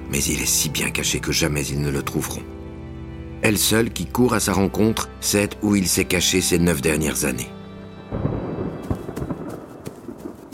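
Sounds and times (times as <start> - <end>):
speech: 0.1 - 2.6, 3.4 - 8.3
deep heavy thunder rumbling with sharper crackles and thumps: 8.1 - 10.5.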